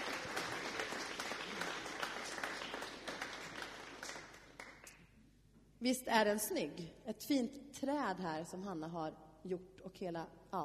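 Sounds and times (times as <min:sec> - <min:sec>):
applause from a small group in a church: 0:00.0 - 0:05.0
speech: 0:05.8 - 0:10.6.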